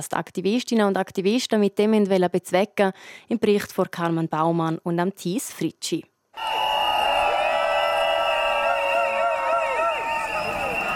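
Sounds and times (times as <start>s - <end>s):
speech: 0.0s - 6.6s
noisemakers blaring in a protest crowd: 6.4s - 10.9s
shrill whistles in a protest crowd: 6.4s - 10.9s.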